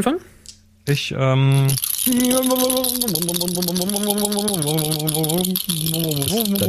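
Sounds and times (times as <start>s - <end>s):
speech: 0.0s - 6.6s
odd buzzing tone stepping up and down in pitch: 1.5s - 6.6s
dice rattling: 1.6s - 6.6s.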